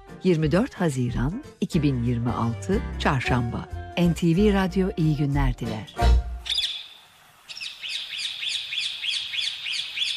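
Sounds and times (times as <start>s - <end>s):
speech: 0.2s - 6.2s
parrot chirps and bright repeated tweeting notes: 6.4s - 10.1s.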